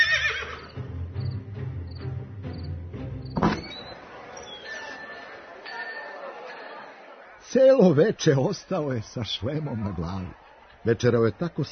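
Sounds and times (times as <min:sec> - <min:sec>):
horse neighing: 0:00.0 - 0:00.7
speech: 0:07.5 - 0:11.7.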